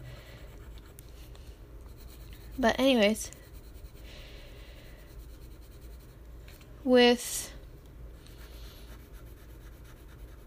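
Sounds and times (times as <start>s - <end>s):
colored pencil shading on paper: 1.8s - 4.1s, 4.9s - 6.2s, 8.2s - 10.4s
speech: 2.6s - 3.4s, 6.8s - 7.6s.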